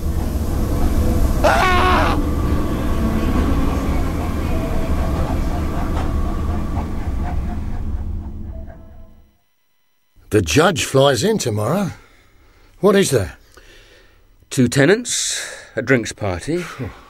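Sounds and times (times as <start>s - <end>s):
train rumbling with a heavy low-end roar: 0.0s - 9.3s
train squealing screech: 1.4s - 2.2s
speech: 10.3s - 12.0s, 12.8s - 13.4s, 14.5s - 17.0s.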